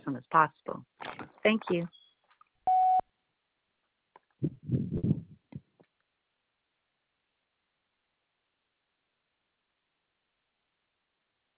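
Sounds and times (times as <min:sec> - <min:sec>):
speech: 0:00.1 - 0:02.0
answering machine beep tone for re-recording a message: 0:02.7 - 0:03.0
low rumbling and thumping noises: 0:04.4 - 0:05.8.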